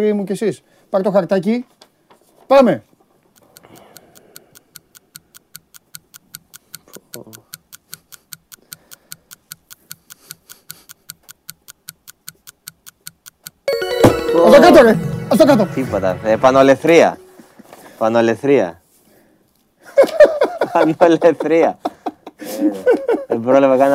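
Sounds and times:
speech: 0.0s - 1.8s, 2.5s - 2.9s, 15.5s - 17.2s, 18.0s - 18.8s, 20.7s - 22.0s, 22.6s - 23.9s
clock ticking as a game timer: 3.3s - 15.8s
laughter: 19.9s - 23.4s.

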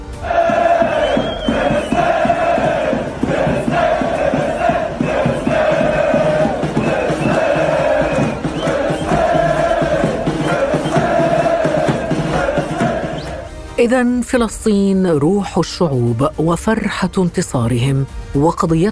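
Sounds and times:
stadium crowd of Moroccan football fans chanting in unison: 0.0s - 13.6s
speech: 13.8s - 18.9s.

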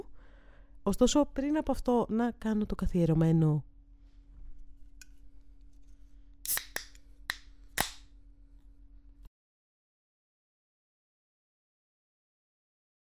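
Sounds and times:
low steady hum: 0.0s - 9.3s
speech: 0.9s - 3.7s
energy drink can being cracked open with hissing fizz: 6.4s - 7.0s.

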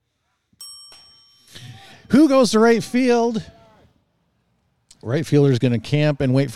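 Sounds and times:
bell ringing to mark a pitch in a baseball game: 0.6s - 3.4s
speech: 2.1s - 3.6s, 5.0s - 6.5s.

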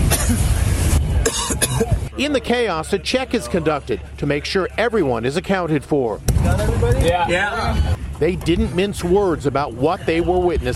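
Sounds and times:
firefighters coughing inside an enclosed vehicle: 0.0s - 0.5s, 1.2s - 2.0s
speech: 0.3s - 0.5s, 2.2s - 10.7s.

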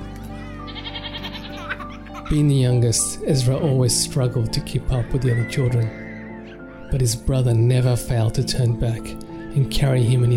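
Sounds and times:
goat bleating: 0.5s - 2.0s
laughter: 0.5s - 2.7s
speech: 2.3s - 6.0s, 6.9s - 10.3s.

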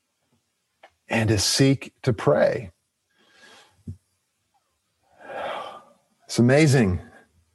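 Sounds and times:
speech: 1.1s - 2.8s, 6.3s - 7.1s
deep breath in during prayer: 3.2s - 3.8s, 5.2s - 6.0s
deep breath let out during prayer: 5.2s - 6.0s.

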